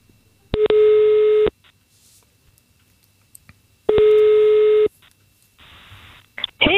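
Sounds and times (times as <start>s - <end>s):
long electronic telephone ringing tone while calling: 0.6s - 1.5s, 3.9s - 4.9s.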